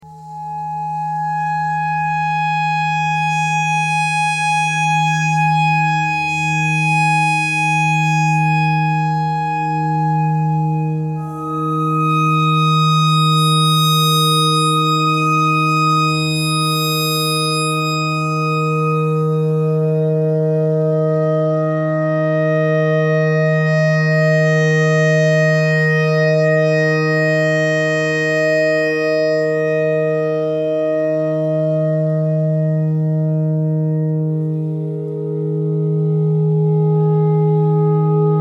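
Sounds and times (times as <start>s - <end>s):
clarinet notes in E pentatonic: 0.0s - 38.3s.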